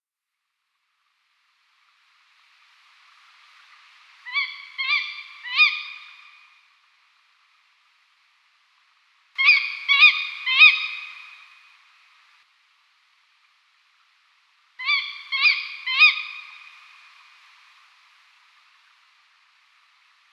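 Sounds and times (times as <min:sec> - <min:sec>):
female Strix aluco calling: 0:04.3 - 0:06.4, 0:09.4 - 0:11.5, 0:14.8 - 0:16.8.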